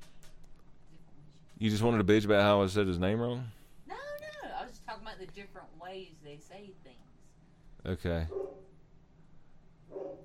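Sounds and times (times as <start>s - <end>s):
speech: 1.6s - 3.6s, 5.2s - 7.2s, 7.8s - 8.7s
dog barking: 8.3s - 8.7s, 9.9s - 10.2s.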